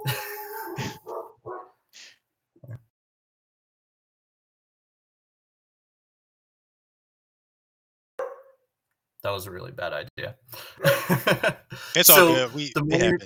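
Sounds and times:
laughter: 0.0 - 1.1, 10.7 - 13.2
dog barking: 0.6 - 1.8, 8.2 - 8.6
speech: 9.2 - 13.2.

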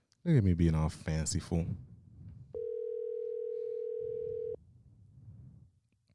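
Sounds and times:
speech: 0.2 - 1.9
electronic ringing tone of an outgoing phone call: 2.6 - 4.6.

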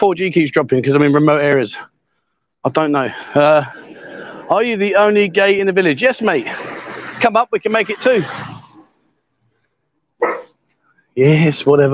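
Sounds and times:
speech: 0.0 - 1.9, 2.6 - 3.9, 4.5 - 8.6, 11.2 - 11.9
dog barking: 10.2 - 10.6.

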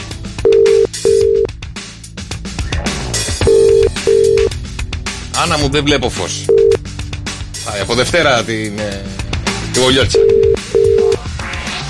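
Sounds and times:
busy music: 0.0 - 11.8
telephone ringing tone, call unanswered: 0.4 - 1.5, 3.4 - 4.5, 6.5 - 6.8, 10.1 - 11.2
speech: 5.4 - 6.8, 7.7 - 9.2, 9.8 - 10.7.

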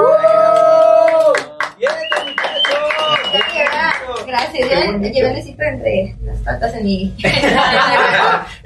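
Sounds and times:
small group of people clapping: 0.2 - 5.0
speech: 6.6 - 8.0
laughter: 7.2 - 8.6.

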